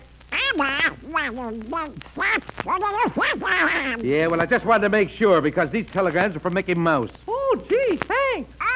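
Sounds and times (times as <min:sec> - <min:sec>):
duck-like quacking cartoon voice: 0:00.3 - 0:04.0, 0:08.6 - 0:08.7
speech: 0:00.5 - 0:08.6.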